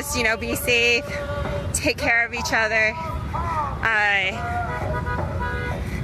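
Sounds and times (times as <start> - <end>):
speech: 0.0 - 4.6
idling engines and traffic in a full parking lot at a rally: 0.0 - 6.0
car horn blast in a full parking lot at a rally: 4.6 - 5.8.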